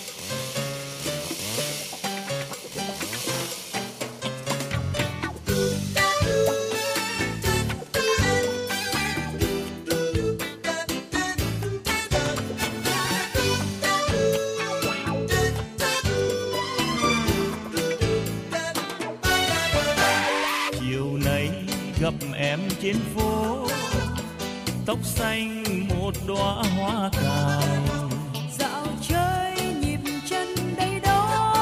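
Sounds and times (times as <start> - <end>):
pop song sung in Vietnamese with full band arrangement: 0.0 - 31.5
speech: 22.8 - 23.7
woman singing: 27.2 - 31.5.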